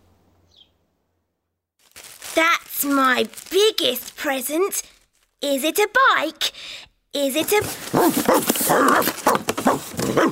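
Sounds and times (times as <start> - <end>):
speech: 2.4 - 6.5, 7.1 - 10.3
dog barking: 7.9 - 10.3.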